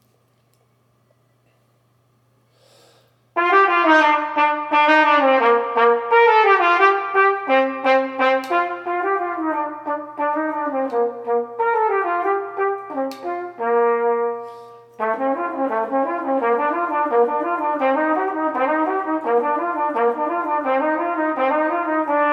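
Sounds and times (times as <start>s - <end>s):
tenor music: 3.4s - 22.3s.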